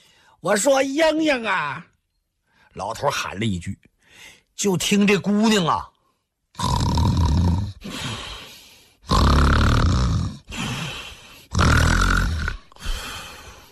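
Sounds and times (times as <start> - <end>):
speech: 0.4 - 1.9, 2.8 - 5.9, 6.6 - 6.8
human voice imitating a young woman snoring loudly: 6.6 - 8.3, 9.0 - 13.6.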